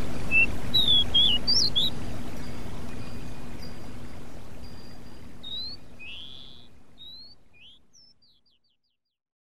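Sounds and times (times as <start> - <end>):
Pied bushchat song: 0.2 - 8.6.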